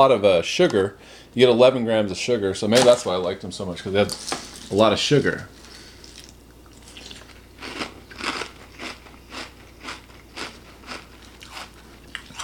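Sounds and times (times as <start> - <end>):
speech: 0.0 - 5.6
person chewing dry frosted corn flake cereal: 5.6 - 12.4.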